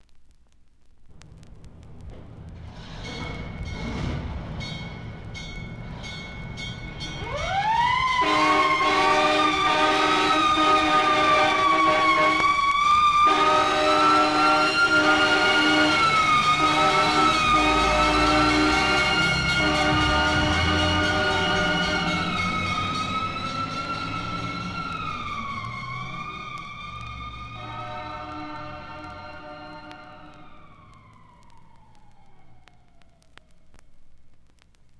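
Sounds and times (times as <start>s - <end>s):
fire engine: 1.8s - 33.6s.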